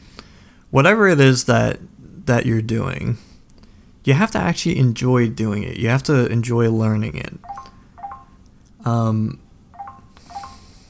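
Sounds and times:
speech: 0:00.7 - 0:03.3, 0:04.0 - 0:07.7, 0:08.8 - 0:09.4
phone notification pings from a marketing message: 0:07.4 - 0:08.4, 0:09.8 - 0:10.8.

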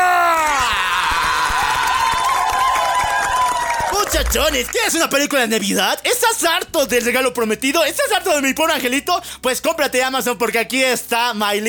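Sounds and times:
rising-then-falling whoop: 0:00.0 - 0:03.2
loud crowd cheering: 0:00.0 - 0:05.0
loud crowd applause: 0:01.0 - 0:05.4
speech: 0:04.2 - 0:11.6.

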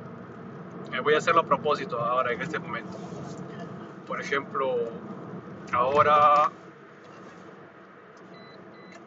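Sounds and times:
road and cabin noise while driving: 0:00.0 - 0:09.0
speech: 0:01.0 - 0:06.6
car lane departure warning beeps: 0:08.3 - 0:09.0.

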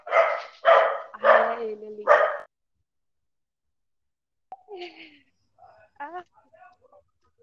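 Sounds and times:
dog barking: 0:00.0 - 0:02.5
speech: 0:01.6 - 0:02.3.

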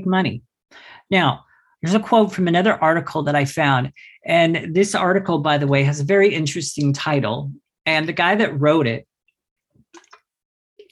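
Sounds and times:
speech: 0:00.1 - 0:09.1
slurping and swallowing water: 0:09.9 - 0:10.9.

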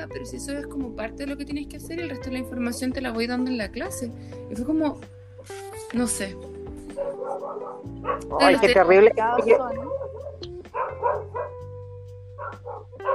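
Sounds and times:
speech: 0:00.0 - 0:10.0
dogs barking outdoors: 0:06.9 - 0:08.7, 0:09.4 - 0:11.7, 0:12.4 - 0:13.1.

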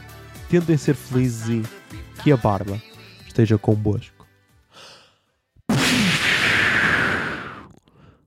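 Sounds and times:
speech: 0:00.5 - 0:04.2
smoke bomb rushing hiss: 0:05.7 - 0:07.7.

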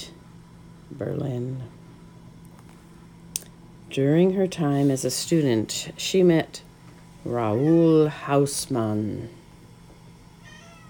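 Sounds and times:
low steady hum: 0:00.0 - 0:10.8
speech: 0:01.0 - 0:01.8, 0:03.9 - 0:09.4
cat meowing: 0:10.4 - 0:10.8.

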